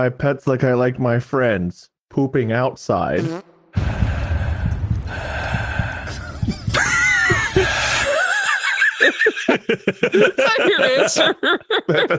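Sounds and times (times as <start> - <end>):
speech: 0.0 - 3.9, 9.5 - 12.1
strained gasps: 3.8 - 8.2
heavy ominous rasping breathing: 3.8 - 8.5
laughter: 6.3 - 12.1.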